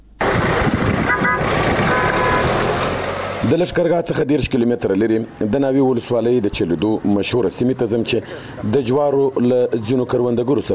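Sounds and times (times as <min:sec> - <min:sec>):
vehicle and road rumble: 0:00.0 - 0:10.7
car horn on a roadway in Nawa district Helmand: 0:01.0 - 0:02.8
speech: 0:03.5 - 0:10.7.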